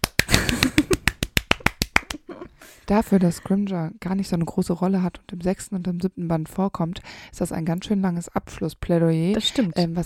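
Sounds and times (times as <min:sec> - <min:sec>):
hand clapping: 0:00.0 - 0:02.4
laughter: 0:00.3 - 0:01.0
speech: 0:02.9 - 0:10.0.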